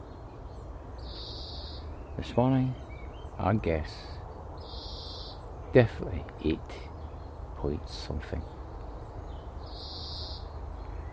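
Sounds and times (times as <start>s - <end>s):
low hiss: 0.0s - 11.1s
bird call in a sunny garden on a calm still morning: 1.0s - 1.9s, 4.6s - 5.4s, 9.7s - 10.5s
speech: 2.2s - 4.2s, 5.7s - 6.9s, 7.6s - 8.6s.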